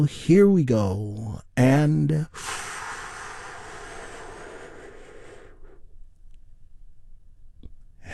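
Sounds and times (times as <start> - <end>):
speech: 0.0 - 2.6
deep inhaled breath during a guided relaxation exercise: 2.3 - 5.9.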